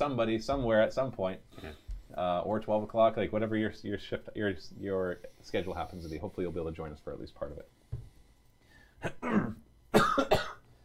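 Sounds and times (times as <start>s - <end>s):
speech: 0.0s - 7.8s, 9.0s - 10.5s
person coughing: 9.0s - 10.6s.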